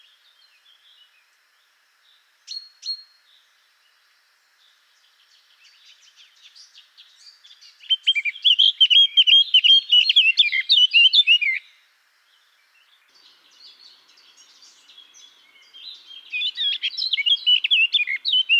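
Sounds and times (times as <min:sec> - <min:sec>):
Eurasian blackcap singing in Garching: 0:07.9 - 0:11.6, 0:13.2 - 0:18.5.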